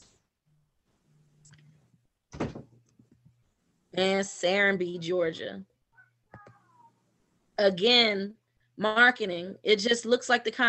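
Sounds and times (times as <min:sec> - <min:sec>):
low steady hum: 0:00.0 - 0:10.6
door shutting with a single solid thud: 0:02.3 - 0:02.7
speech: 0:04.0 - 0:05.7, 0:07.6 - 0:10.6.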